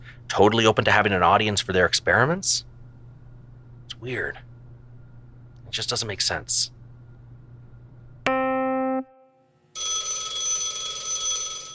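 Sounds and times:
speech: 0.3 - 2.7, 4.0 - 4.5, 5.7 - 6.8
telephone ringing: 9.8 - 11.7.

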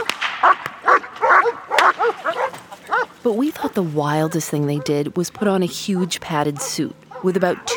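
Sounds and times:
police dog barking: 0.4 - 3.2, 4.2 - 5.1, 5.9 - 7.7
speech: 3.2 - 7.7.

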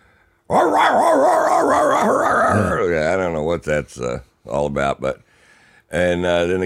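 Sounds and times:
dogs barking: 0.5 - 2.5
dogs wavering howls: 0.5 - 2.8
speech: 3.6 - 5.3, 5.9 - 6.6.

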